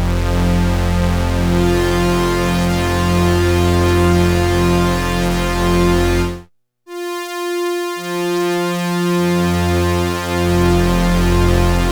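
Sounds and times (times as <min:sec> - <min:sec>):
synthesizer preset: 0:00.2 - 0:11.8.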